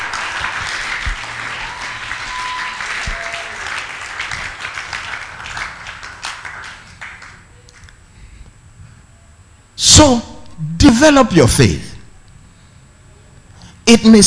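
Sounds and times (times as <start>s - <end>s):
crowd applauding: 0.0s - 8.0s
speech: 10.0s - 10.3s, 10.9s - 11.9s, 13.9s - 14.2s.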